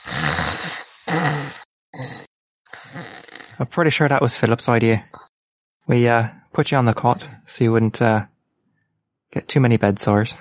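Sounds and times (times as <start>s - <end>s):
person imitating snoring with raspy snorts: 0.0s - 3.6s
speech: 3.6s - 5.3s, 5.9s - 8.3s, 9.3s - 10.3s.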